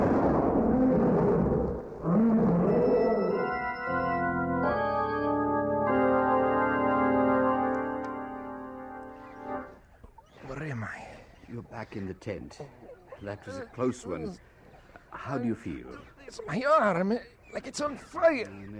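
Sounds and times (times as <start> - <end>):
lions roaring during an attack: 0.4 - 3.6
sustained brass-like chord: 3.8 - 9.7
speech: 11.9 - 14.5, 15.1 - 18.7.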